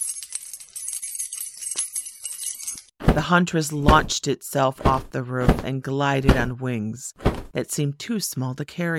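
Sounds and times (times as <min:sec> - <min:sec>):
keys jangling in a pocket: 0:00.0 - 0:03.0
speech: 0:03.2 - 0:08.9.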